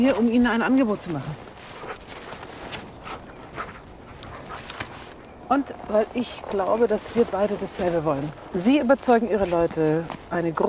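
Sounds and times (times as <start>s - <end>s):
speech: 0.0s - 1.5s, 5.5s - 10.6s
dog panting: 1.6s - 7.6s.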